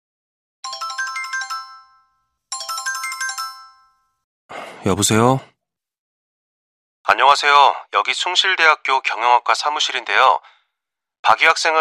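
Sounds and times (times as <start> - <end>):
phone ringtone for an incoming call: 0.6 - 4.3
speech: 4.8 - 5.5, 7.1 - 10.5, 11.2 - 11.8.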